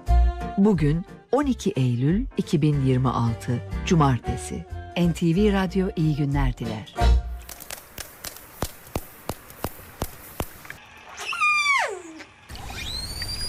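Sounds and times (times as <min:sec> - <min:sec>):
speech: 0:00.6 - 0:07.1
steady run of regular sharp clicks: 0:07.4 - 0:10.8
dolphin whistles: 0:11.1 - 0:13.4.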